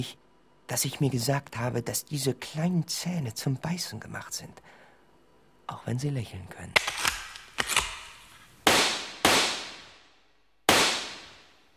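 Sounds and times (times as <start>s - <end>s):
speech: 0.0s - 4.8s, 5.7s - 7.0s
gunshots from a handheld steel gun: 6.8s - 10.0s, 10.7s - 11.5s.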